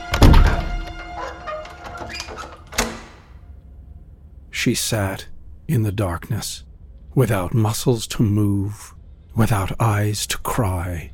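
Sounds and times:
door latch settling with a sharp knock: 0:00.0 - 0:03.4
heavy door closing with a deep booming thud: 0:00.0 - 0:03.4
speech: 0:04.6 - 0:11.1.

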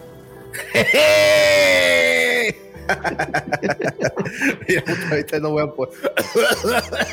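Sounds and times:
speech: 0:00.6 - 0:01.8, 0:02.9 - 0:07.1
laughter: 0:00.6 - 0:05.3, 0:06.0 - 0:07.1
person imitating a character's scream: 0:00.8 - 0:02.6.

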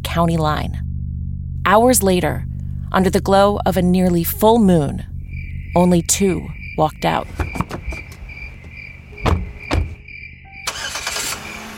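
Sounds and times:
car engine rumbling on a quiet back road: 0:00.0 - 0:11.7
speech: 0:00.2 - 0:00.8, 0:01.7 - 0:05.1, 0:05.7 - 0:07.6
broad road noise: 0:01.1 - 0:11.7
insects chirping: 0:05.0 - 0:11.7
sharp knocks: 0:07.2 - 0:10.0.

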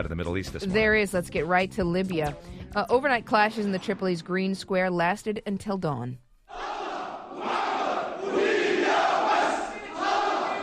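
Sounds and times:
speech: 0:00.0 - 0:06.2
large protest crowd chanting and shouting: 0:06.5 - 0:10.6.

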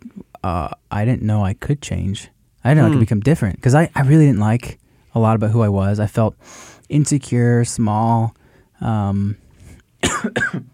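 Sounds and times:
speech: 0:00.4 - 0:09.4, 0:10.2 - 0:10.7
person coughing while still a little sick: 0:02.8 - 0:03.1, 0:10.0 - 0:10.7.

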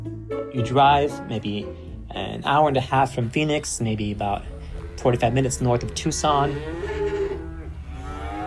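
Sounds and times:
speech: 0:00.6 - 0:06.9
cow lowing at a cattle auction on a hot day: 0:04.7 - 0:08.4.

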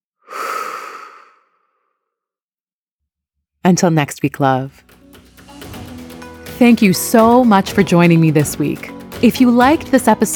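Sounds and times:
deep slow breath in and out: 0:00.2 - 0:02.0
speech: 0:03.6 - 0:05.0, 0:06.6 - 0:10.3.

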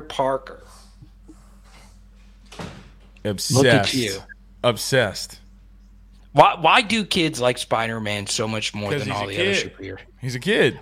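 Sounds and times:
speech: 0:00.1 - 0:00.8, 0:03.2 - 0:05.4, 0:06.3 - 0:10.8
door sliding or swinging shut with a muffled thud: 0:02.5 - 0:03.0
people talking loudly and excitedly: 0:03.5 - 0:04.3.

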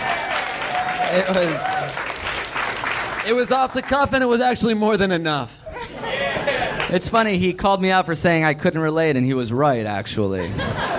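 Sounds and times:
dense applause of many hands clapping: 0:00.0 - 0:04.2
speech: 0:01.1 - 0:02.0, 0:03.2 - 0:05.6, 0:06.9 - 0:10.8
laughter: 0:05.6 - 0:07.0, 0:10.2 - 0:10.9.

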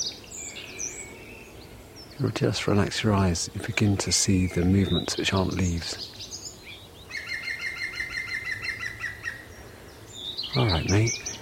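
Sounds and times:
faint outdoor background: 0:00.0 - 0:11.3
speech: 0:02.2 - 0:06.2, 0:10.6 - 0:11.2
green woodpecker yaffling call: 0:07.1 - 0:09.5.

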